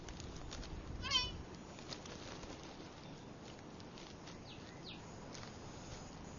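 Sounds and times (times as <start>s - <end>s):
steady hiss: 0.0s - 6.3s
lost white-tailed deer calf bleating for its mother in dense mangrove thicket: 1.0s - 1.4s.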